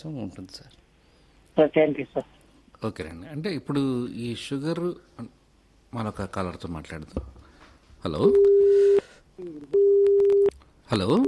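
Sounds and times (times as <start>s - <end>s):
speech: 0.0s - 0.8s, 1.6s - 7.4s, 8.0s - 10.2s, 10.9s - 11.2s
telephone busy tone after a phone-in call is cut off: 8.3s - 9.0s, 9.7s - 10.5s.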